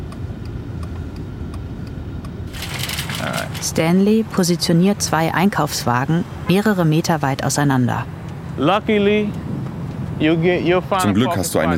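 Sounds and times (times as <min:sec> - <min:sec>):
car engine rumbling low: 0:02.4 - 0:11.0
car brakes hissing as the car stops in a supermarket parking lot: 0:02.5 - 0:04.2
speech: 0:03.3 - 0:09.4, 0:10.2 - 0:11.7.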